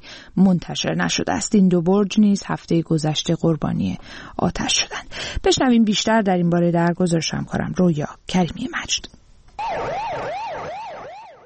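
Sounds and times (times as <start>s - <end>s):
speech: 0.4s - 10.8s
fire engine sirens in Iran wailing: 9.6s - 11.4s.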